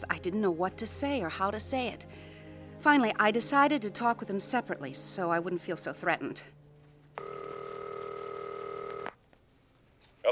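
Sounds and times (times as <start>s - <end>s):
speech: 0.0s - 6.6s
telephone ringing: 7.2s - 9.1s.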